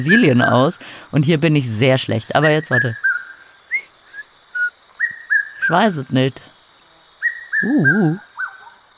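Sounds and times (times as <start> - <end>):
speech: 0.0 - 3.0, 5.7 - 6.5, 7.6 - 8.3
high insect drone: 0.0 - 8.9
red-chested cuckoo giving whistled notes: 2.6 - 5.6, 7.2 - 8.7.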